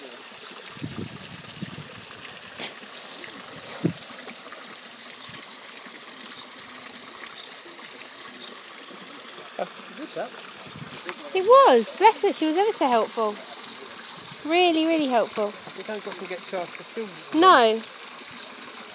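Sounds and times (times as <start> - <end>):
water flowing from small waterfalls at duck ponds beside a wooden bridge: 0.0 - 18.9
speech: 10.2 - 10.6, 11.4 - 13.5, 14.4 - 18.0.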